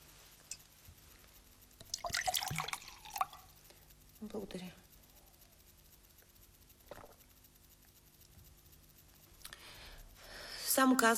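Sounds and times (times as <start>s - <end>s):
water poured into a glass: 1.8s - 3.5s
speech: 4.2s - 4.8s, 10.8s - 11.1s.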